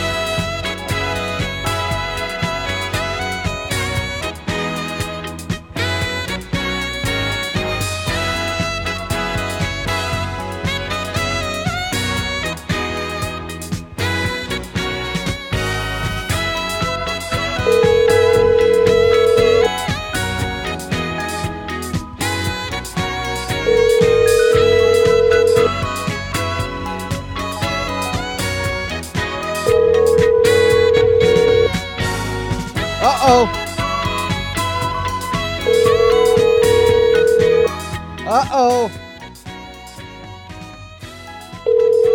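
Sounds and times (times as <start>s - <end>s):
loud busy music: 0.0s - 42.1s
ringback tones of an outgoing phone call: 17.6s - 20.3s, 23.6s - 25.9s, 29.7s - 31.8s, 41.5s - 42.1s.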